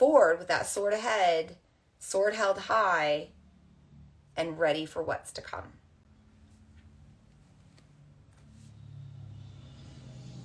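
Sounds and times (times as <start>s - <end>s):
speech: 0.0s - 3.4s, 4.4s - 5.8s
car passing by outside: 8.0s - 10.4s.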